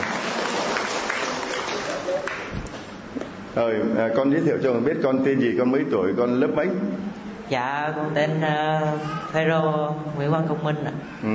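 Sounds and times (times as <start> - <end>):
crowd clapping: 0.0 - 2.8
speech: 3.6 - 11.3.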